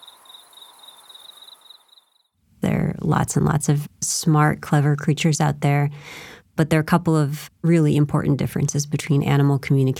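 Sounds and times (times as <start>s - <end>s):
steady high-pitched insect buzz: 0.0s - 2.3s
speech: 3.1s - 9.9s.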